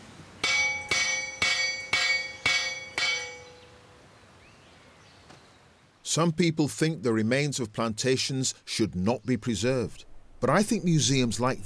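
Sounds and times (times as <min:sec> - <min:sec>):
large metal plantation alarm bell clanging: 0:00.4 - 0:03.7
speech: 0:06.1 - 0:11.6.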